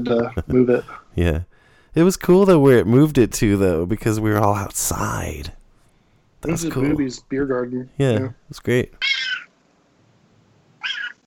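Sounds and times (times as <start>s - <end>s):
speech: 0.0s - 5.6s, 6.4s - 9.5s
cat meowing loudly: 9.0s - 9.5s, 10.8s - 11.2s.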